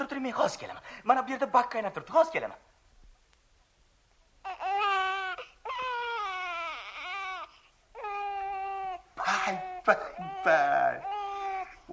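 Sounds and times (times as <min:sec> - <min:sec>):
speech: 0:00.1 - 0:02.7, 0:09.5 - 0:11.1
baby crying: 0:04.4 - 0:11.9.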